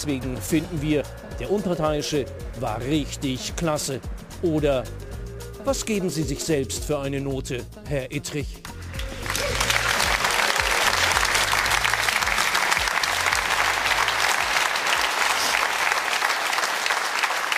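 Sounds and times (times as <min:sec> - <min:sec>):
speech: 0:00.0 - 0:05.0, 0:05.6 - 0:08.7
audience applause: 0:08.9 - 0:17.5.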